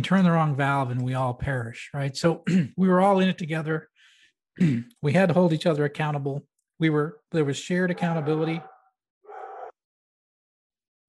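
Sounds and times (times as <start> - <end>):
speech: 0.0 - 3.9, 4.6 - 8.7
dog barking: 7.9 - 9.8.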